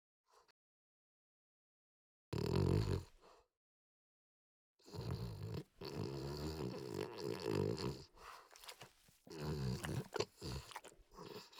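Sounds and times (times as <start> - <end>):
French Bulldog snorting and snuffling: 4.9 - 11.5.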